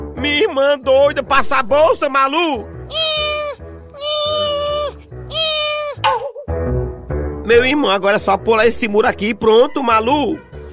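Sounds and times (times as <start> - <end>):
speech: 0.2 - 3.4, 7.5 - 10.5
cat meowing: 2.9 - 6.0.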